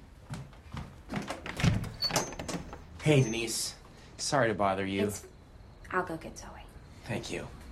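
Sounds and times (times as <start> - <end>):
house front door thuds and knocks: 1.2 - 2.7
speech: 3.1 - 5.3, 5.9 - 6.6, 7.1 - 7.6.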